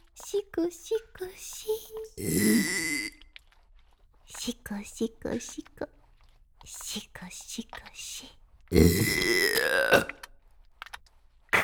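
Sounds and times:
speech: 0.3s - 3.1s, 4.3s - 6.0s, 6.6s - 10.2s
person burping: 2.2s - 3.2s, 8.7s - 10.3s.

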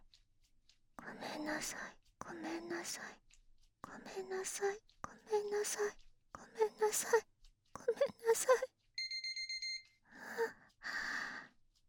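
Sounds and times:
speech: 1.4s - 3.2s, 3.8s - 6.0s, 6.6s - 7.3s, 7.9s - 8.7s
timer alarm electronic beeps: 9.0s - 10.0s.

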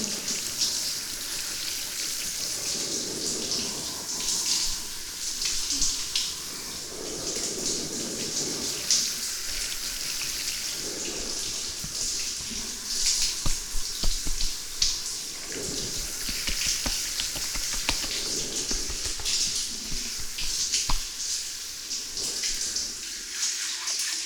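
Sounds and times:
tap water pouring to rinse foam away: 0.0s - 24.1s.

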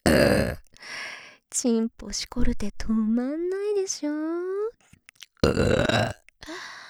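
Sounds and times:
woman burping loudly: 0.0s - 0.7s, 5.4s - 6.3s
speech: 1.6s - 4.5s, 5.4s - 6.2s.

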